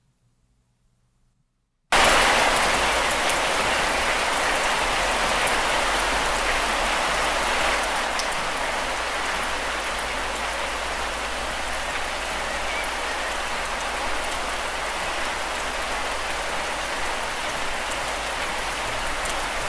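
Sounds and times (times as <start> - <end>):
rain falling at home: 1.9 - 19.6.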